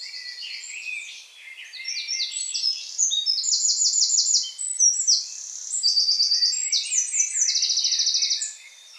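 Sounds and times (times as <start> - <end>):
Eurasian Wren Troglodytes troglodytes singing: 0.0 - 8.9.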